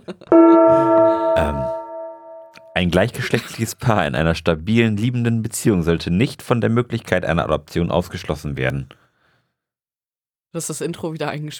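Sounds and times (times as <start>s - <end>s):
speech: 0.1s - 1.7s, 2.8s - 9.0s, 10.5s - 11.5s
gong struck: 0.3s - 2.8s.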